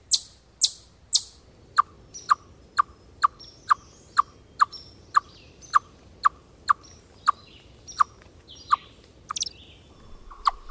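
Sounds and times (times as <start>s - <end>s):
Eastern chipmunk chipping: 0.1s - 10.6s.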